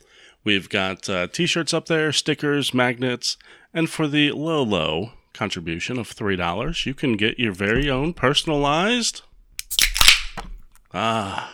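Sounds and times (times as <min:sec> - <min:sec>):
speech: 0:00.4 - 0:09.8, 0:10.4 - 0:11.5
beer can from the refrigerator being cracked open: 0:09.6 - 0:10.8
short voiced sigh: 0:11.0 - 0:11.5.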